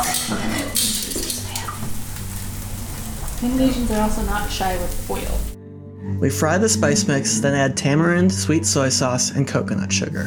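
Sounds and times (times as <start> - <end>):
light metallic clinks and scrapes of cookware: 0.0 - 2.0
running water rinsing a frying pan: 0.0 - 5.6
speech: 3.4 - 10.2.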